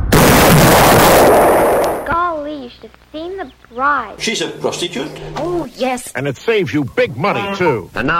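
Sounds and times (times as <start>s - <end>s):
long-range missiles firing and exploding sound effect: 0.1s - 2.2s
speech: 2.9s - 8.1s.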